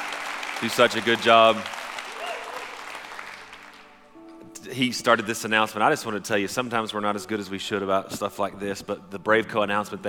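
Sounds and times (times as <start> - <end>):
church audience applauding: 0.0 - 3.9
speech: 0.6 - 1.8, 4.7 - 10.0.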